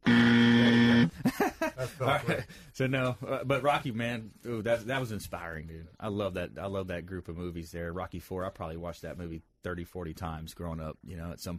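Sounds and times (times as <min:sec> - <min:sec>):
harsh game show buzzer: 0:00.0 - 0:01.2
laughter: 0:01.1 - 0:02.7
speech: 0:01.8 - 0:11.5.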